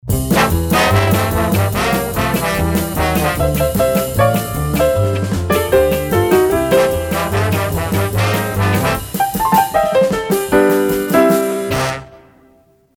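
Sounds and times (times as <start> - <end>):
instrumental trombone jingle: 0.1 - 12.5.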